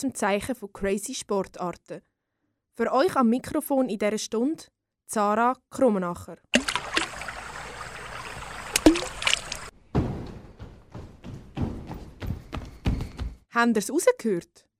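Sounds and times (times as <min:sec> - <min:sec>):
speech: 0:00.0 - 0:02.1, 0:02.8 - 0:06.6, 0:13.6 - 0:14.7
water sloshing and splashing: 0:06.5 - 0:09.7
knocks: 0:09.9 - 0:13.4.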